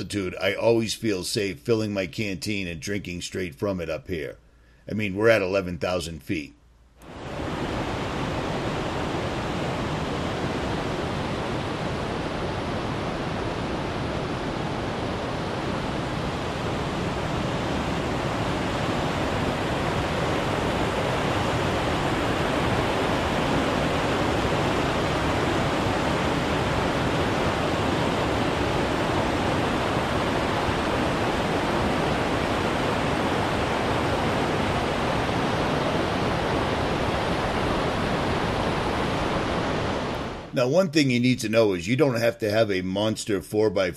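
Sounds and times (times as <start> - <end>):
speech: 0.0 - 7.2, 40.6 - 43.9
mountain stream flowing beside a trail at about 11,000 feet: 7.1 - 40.5.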